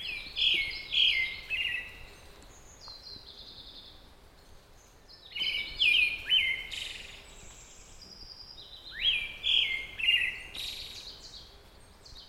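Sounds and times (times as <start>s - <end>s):
Pale thrush Turdus pallidus song of whistled notes and twitters: 0.0s - 2.2s, 5.1s - 11.4s
faint background hiss: 0.0s - 12.2s.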